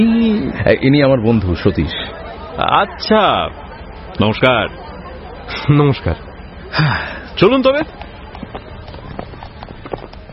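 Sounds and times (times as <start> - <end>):
speech: 0.0 - 4.8, 5.6 - 8.0
carriage wheels rumbling on road: 0.0 - 10.3
horse hooves clattering: 7.8 - 10.3.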